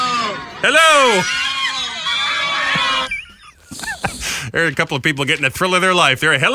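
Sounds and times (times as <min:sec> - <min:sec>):
crowd of passengers screaming: 0:00.0 - 0:03.4
laughter: 0:00.4 - 0:04.5
speech: 0:00.6 - 0:01.5, 0:04.5 - 0:06.5.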